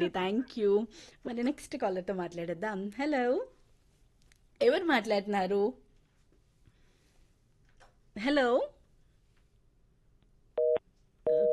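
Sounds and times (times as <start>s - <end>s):
speech: 0.0s - 3.6s, 4.6s - 5.8s, 8.2s - 8.8s
phone busy tone as a call disconnects: 10.6s - 11.5s.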